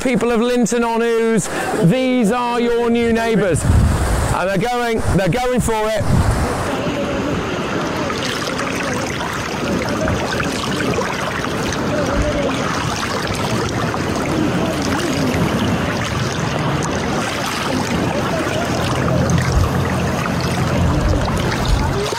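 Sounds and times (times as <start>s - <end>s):
speech: 0.0s - 6.4s
small boat pushing through choppy water: 0.0s - 22.1s
faint indistinct voices of people on a small boat: 6.6s - 22.1s
low rumble of a small boat: 13.5s - 22.1s.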